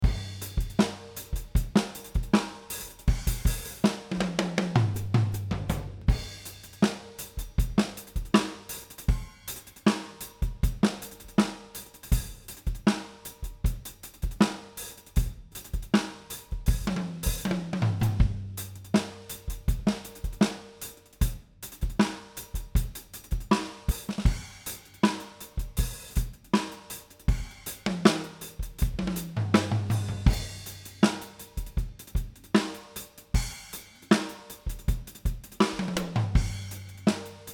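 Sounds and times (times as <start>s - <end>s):
natural drums: 0.0s - 37.5s.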